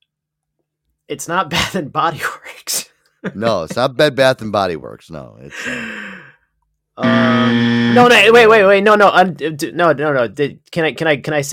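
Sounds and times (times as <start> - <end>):
speech: 1.1 - 2.6, 3.2 - 6.3, 7.0 - 11.5
game show timer buzzer: 7.0 - 8.7.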